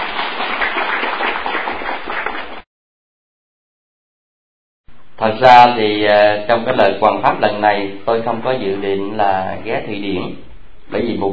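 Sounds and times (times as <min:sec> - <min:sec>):
crowd applause: 0:00.0 - 0:02.6
speech: 0:05.2 - 0:11.3.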